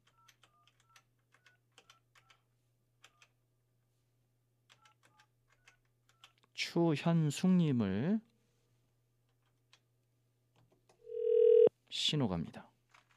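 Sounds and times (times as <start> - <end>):
speech: 6.7 - 8.3, 12.1 - 12.7
telephone keypad beeps while dialing: 11.1 - 11.7.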